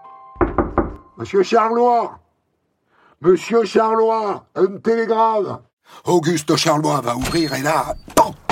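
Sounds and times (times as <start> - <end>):
knocking on a door: 0.4 - 1.0
speech: 1.2 - 2.2, 3.2 - 8.4.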